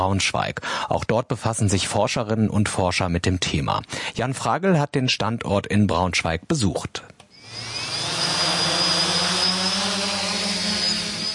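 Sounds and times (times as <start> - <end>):
speech: 0.0 - 7.7
two drones spinning up and taking off: 7.4 - 11.3.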